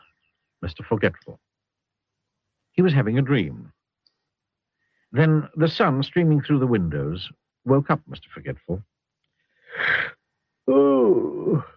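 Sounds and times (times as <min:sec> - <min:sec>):
speech: 0:00.6 - 0:01.5, 0:02.8 - 0:03.8, 0:05.1 - 0:08.9, 0:09.7 - 0:11.7
voice performing a loud drawn-out yawn: 0:09.8 - 0:10.1, 0:10.7 - 0:11.7.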